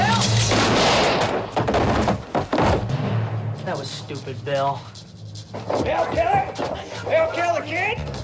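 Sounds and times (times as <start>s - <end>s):
gunshot: 0.2s - 3.4s
speech: 4.1s - 8.2s.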